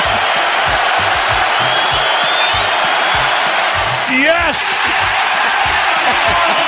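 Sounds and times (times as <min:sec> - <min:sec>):
basketball arena crowd cheering: 0:00.0 - 0:06.6
single excited shout: 0:04.1 - 0:05.0
laughter: 0:04.2 - 0:06.6
speech: 0:04.5 - 0:05.2.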